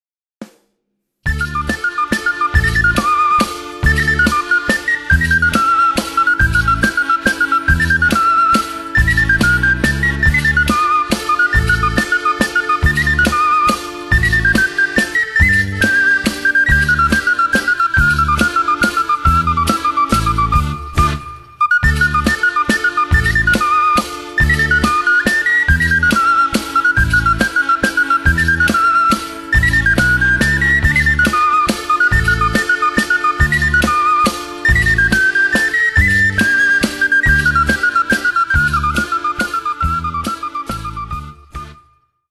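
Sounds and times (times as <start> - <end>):
mazurka music: 1.2 - 42.2.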